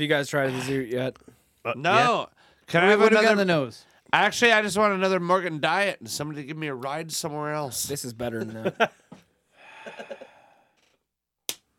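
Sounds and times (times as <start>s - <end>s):
speech: 0.0s - 9.2s
person sniffing a beer: 9.6s - 10.6s.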